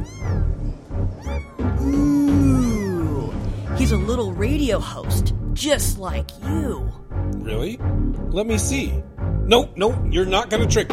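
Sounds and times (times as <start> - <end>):
cat meowing in phone video playback: 0.0 - 4.4
speech: 3.8 - 10.9.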